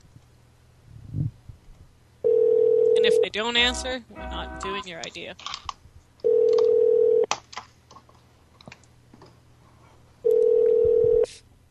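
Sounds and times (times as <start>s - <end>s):
ringback tones from an outgoing phone call: 2.2s - 3.2s, 6.2s - 7.3s, 10.2s - 11.3s
speech: 3.3s - 5.7s.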